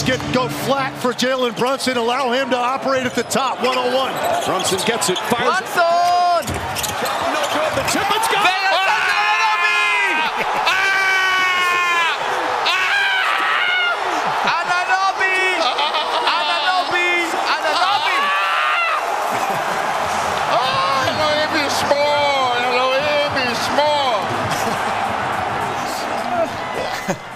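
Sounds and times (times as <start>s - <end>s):
speech: 0.0s - 6.6s, 7.8s - 8.9s
arena crowd roaring and cheering: 0.0s - 27.3s
person screaming excitedly at a basketball play: 8.3s - 14.1s, 14.7s - 19.1s
laughter: 8.4s - 21.8s, 23.1s - 27.3s.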